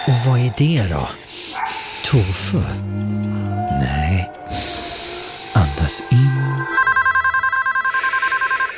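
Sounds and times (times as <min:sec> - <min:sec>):
speech: 0:00.2 - 0:04.6, 0:05.8 - 0:07.0
telephone ringing with electronic trill: 0:06.2 - 0:08.7.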